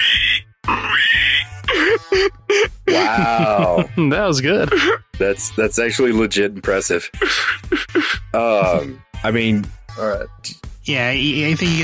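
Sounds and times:
man imitating pig oinking grunts: 0.0s - 1.4s, 2.9s - 3.9s, 8.3s - 9.0s
man imitating pig squealing calls: 0.0s - 3.9s, 7.2s - 9.0s
laughter: 1.7s - 5.0s, 7.2s - 9.0s
speech: 2.2s - 11.8s.

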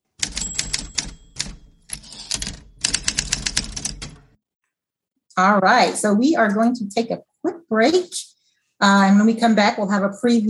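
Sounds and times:
typewriter keystrokes: 0.2s - 4.3s
speech: 5.4s - 10.4s.

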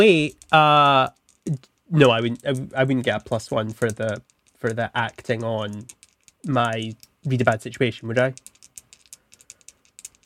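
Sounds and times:
speech: 0.0s - 8.5s
dice rattling in a cup or hand: 0.0s - 10.2s.

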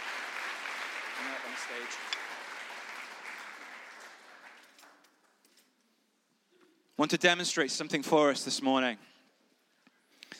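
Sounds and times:
audience applause of many hands clapping: 0.0s - 5.0s
speech: 1.2s - 2.5s, 7.0s - 9.1s.

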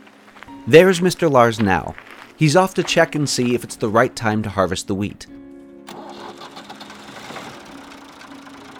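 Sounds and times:
speech: 0.6s - 6.0s
tractor engine running: 5.9s - 8.7s.

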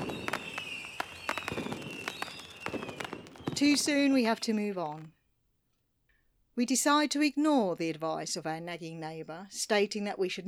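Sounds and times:
Fourth of July fireworks over a river popping and crackling: 0.0s - 5.1s
speech: 3.6s - 5.2s, 6.6s - 10.4s.

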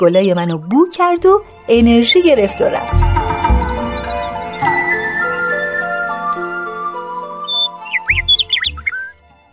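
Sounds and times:
speech: 0.0s - 3.2s
soft sustained music: 0.0s - 9.5s
nightingale singing: 1.8s - 9.2s.

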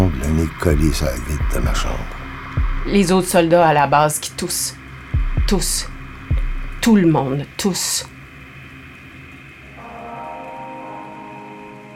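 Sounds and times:
faint low tonal hum: 0.0s - 11.9s
rain falling: 0.0s - 11.9s
speech: 0.5s - 2.2s, 2.8s - 4.8s, 5.4s - 5.9s, 6.8s - 8.2s.

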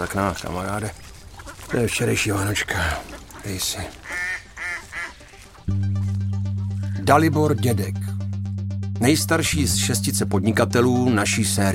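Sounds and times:
speech: 0.0s - 1.1s, 1.7s - 4.2s, 7.1s - 8.1s, 9.0s - 11.7s
mallard drake quacking by a reservoir: 1.4s - 5.6s
loud steady droning tone: 5.7s - 11.7s.

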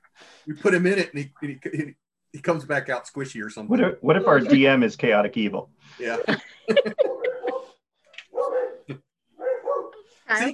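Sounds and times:
speech: 0.4s - 7.2s, 10.3s - 10.5s
laughter: 6.0s - 7.7s
dog barking and yipping: 7.0s - 10.1s.

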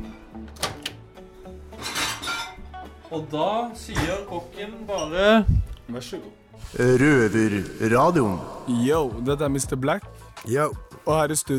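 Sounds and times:
dish clattering out of a microwave: 1.8s - 2.6s
speech: 3.1s - 11.5s.

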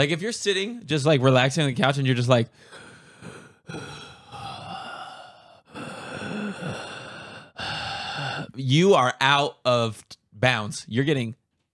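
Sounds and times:
speech: 0.0s - 4.0s, 8.6s - 11.4s
person imitating heavy breathing: 2.6s - 8.6s.

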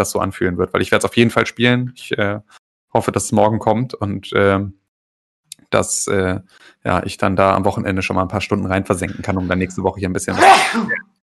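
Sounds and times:
speech: 0.0s - 4.8s, 5.7s - 11.2s
person sneezing: 10.3s - 11.0s.

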